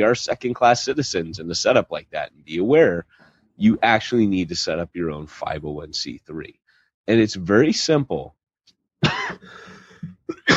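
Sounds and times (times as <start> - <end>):
speech: 0.0 - 8.4
person coughing: 9.0 - 10.5
short throat sound: 9.0 - 10.5
raspy exhale: 9.4 - 10.0.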